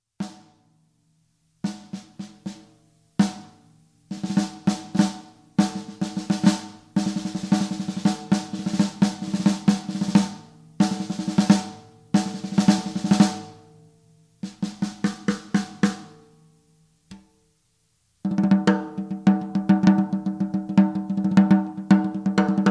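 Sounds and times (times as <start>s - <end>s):
big band snare drum: 0.2s - 0.6s, 1.7s - 13.6s, 14.4s - 16.2s, 18.3s - 22.7s.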